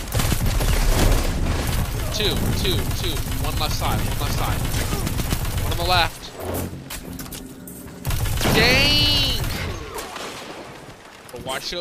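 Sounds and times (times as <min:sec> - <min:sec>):
gunfire barrage in a video game: 0:00.0 - 0:06.2, 0:08.0 - 0:11.1
speech: 0:02.2 - 0:06.8, 0:11.4 - 0:11.7.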